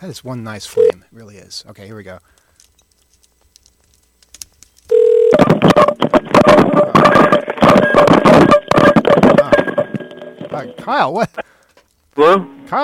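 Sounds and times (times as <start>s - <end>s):
speech: 0.0s - 2.4s, 5.8s - 7.4s, 10.6s - 11.5s, 12.2s - 12.8s
steady telephone tone on an outgoing line: 4.9s - 10.6s.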